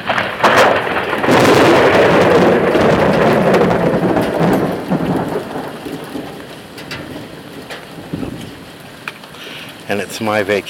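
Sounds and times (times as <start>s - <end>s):
deep rolling rumble of thunder during a thunderstorm: 0.0s - 10.6s
steady heavy rain hitting an awning during a thunderstorm: 0.0s - 10.6s
speech: 9.9s - 10.6s.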